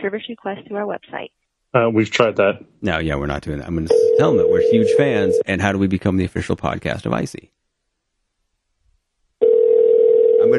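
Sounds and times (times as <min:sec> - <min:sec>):
speech: 0:00.0 - 0:07.6
outgoing call ring tone through a phone line: 0:03.9 - 0:05.4, 0:09.4 - 0:10.5.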